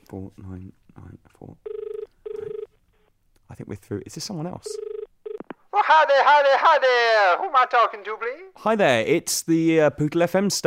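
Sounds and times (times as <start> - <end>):
speech: 0.1 - 1.8, 3.5 - 4.9, 5.7 - 10.6
telephone ring tone buzzing through the line: 1.6 - 2.7, 4.7 - 5.4.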